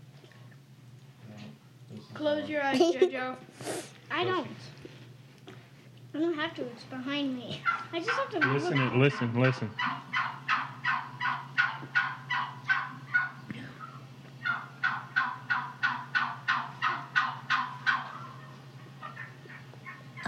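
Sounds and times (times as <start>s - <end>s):
steady low hum: 0.0s - 20.2s
speech: 2.1s - 4.8s, 6.2s - 10.1s
turkeys gobbling: 7.6s - 20.2s.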